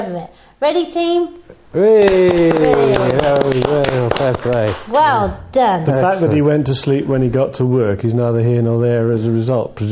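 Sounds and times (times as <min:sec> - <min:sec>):
speech: 0:00.0 - 0:09.9
person cheering: 0:01.8 - 0:04.6
scattered clapping from a few people: 0:02.0 - 0:05.1.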